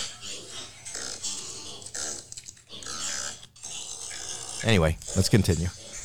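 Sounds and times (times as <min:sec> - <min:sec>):
tiny pig caught in pillows grunting and snuffling in a phone video: 0:00.3 - 0:06.0
speech: 0:04.6 - 0:05.8.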